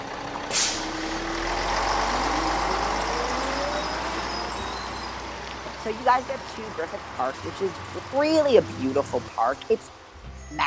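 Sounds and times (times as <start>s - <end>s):
large vehicle engine idling and pulling away: 0.0s - 10.6s
air brake hiss: 0.5s - 0.9s
speech: 5.9s - 10.6s.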